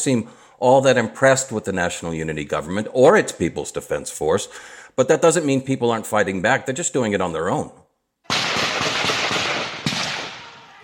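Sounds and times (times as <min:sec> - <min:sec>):
speech: 0:00.0 - 0:07.8
gunfire during a civilian militia attack on a police station: 0:08.3 - 0:10.6.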